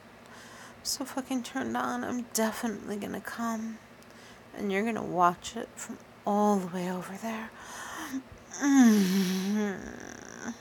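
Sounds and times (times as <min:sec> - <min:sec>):
speech: 0:00.9 - 0:03.9, 0:04.6 - 0:10.5
heavy breathing close to microphone: 0:07.6 - 0:10.5.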